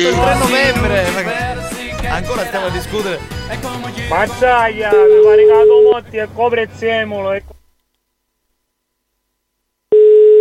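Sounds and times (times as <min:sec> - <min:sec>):
speech: 0:00.0 - 0:01.4, 0:02.1 - 0:07.6
steady buzzy telephone ringing tone on the line: 0:04.9 - 0:05.9, 0:09.9 - 0:10.3.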